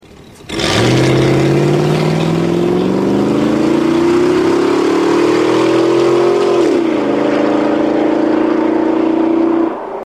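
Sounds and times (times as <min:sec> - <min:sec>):
Escalade Yukon Denali SUV launching with sport exhaust system: 0:00.4 - 0:09.5.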